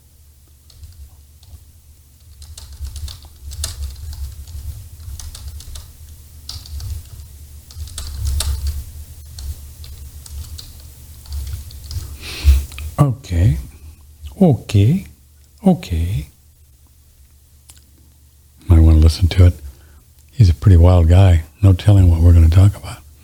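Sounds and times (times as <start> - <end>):
typing on a computer keyboard: 0.7 - 1.6, 2.2 - 5.9, 6.5 - 12.1
speech: 14.4 - 16.3, 19.1 - 19.6, 20.4 - 23.0.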